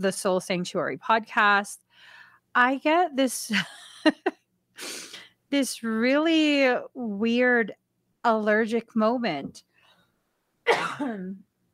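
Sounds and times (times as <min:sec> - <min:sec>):
speech: 0:00.0 - 0:09.7, 0:10.7 - 0:11.5
single loud cough: 0:10.7 - 0:11.4.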